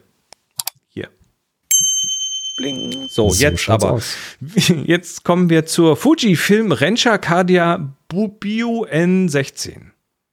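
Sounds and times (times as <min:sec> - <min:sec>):
speech: 0:01.0 - 0:01.2, 0:02.6 - 0:09.9
bright notification bell ding: 0:01.7 - 0:03.9.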